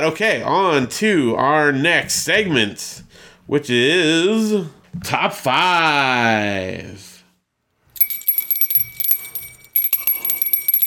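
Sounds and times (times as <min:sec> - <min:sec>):
speech: 0:00.0 - 0:07.1
bright bell ringing: 0:08.0 - 0:10.8.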